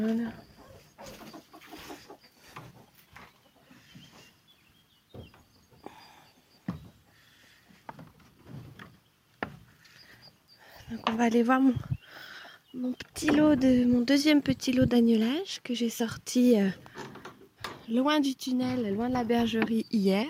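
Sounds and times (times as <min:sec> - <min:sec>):
speech: 0:00.0 - 0:01.2, 0:11.2 - 0:11.9, 0:12.8 - 0:17.0, 0:17.9 - 0:20.2
rooster clucking after coming down: 0:00.6 - 0:02.9.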